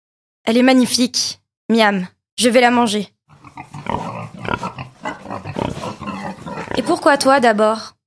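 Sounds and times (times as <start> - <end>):
speech: 0.5 - 3.7, 6.8 - 8.0
pigs grunting: 3.3 - 7.4.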